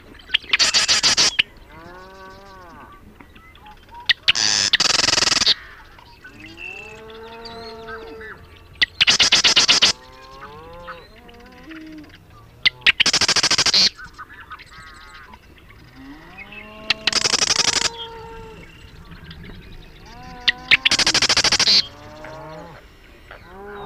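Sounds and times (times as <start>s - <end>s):
marsh wren singing buzzy chattering trills: 0.0s - 23.8s
soft wavering harmonic bird calls: 0.0s - 23.8s.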